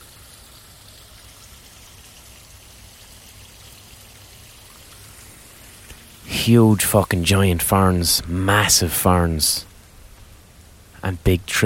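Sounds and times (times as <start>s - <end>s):
flowing water in a fern gully: 0.0s - 11.6s
speech: 6.4s - 9.7s, 11.0s - 11.6s.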